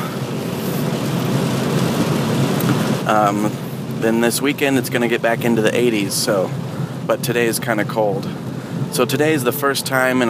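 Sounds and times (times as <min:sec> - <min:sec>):
steady rain falling on a cold morning: 0:00.1 - 0:04.5
speech: 0:03.1 - 0:10.2.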